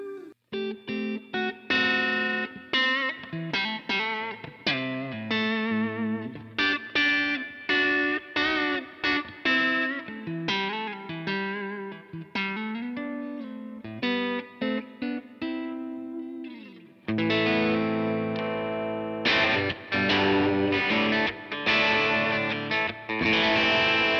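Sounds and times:
electric guitar played through a multi-effects pedal with distorted chorused tone and heavy reverb: 0.0 - 24.1.

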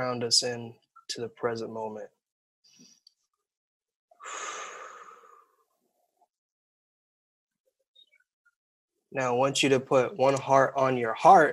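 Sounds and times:
speech: 0.0 - 2.2, 9.1 - 11.5
deep breath during a guided grounding exercise: 4.2 - 5.7.

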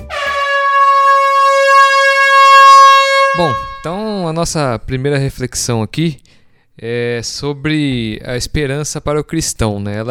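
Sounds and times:
sustained brassy air horn blast: 0.0 - 4.0
speech: 3.4 - 10.0.

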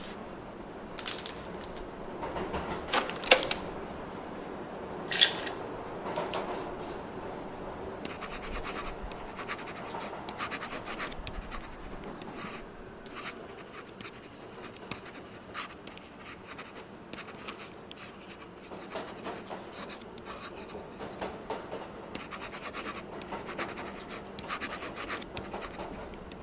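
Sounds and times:
train background low rumble: 0.0 - 26.4
pen scratching on paper: 8.0 - 21.3, 22.1 - 26.4.

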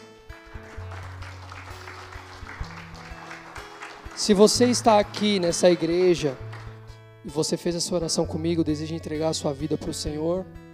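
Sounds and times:
church audience applauding after a prayer: 0.5 - 6.8
speech: 4.2 - 6.5, 7.2 - 10.6.

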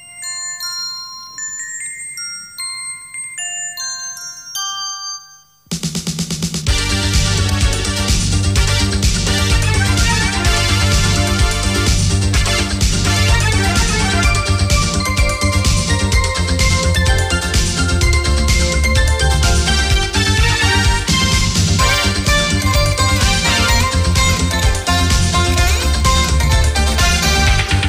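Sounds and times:
loud music track with steady bass pulse and bright layered melody: 5.8 - 27.8.

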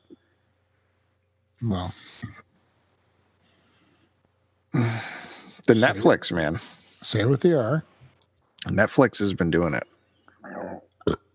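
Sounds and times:
speech: 1.6 - 2.5, 5.7 - 7.9, 8.7 - 9.9
low croaking throat burp: 10.4 - 11.3.

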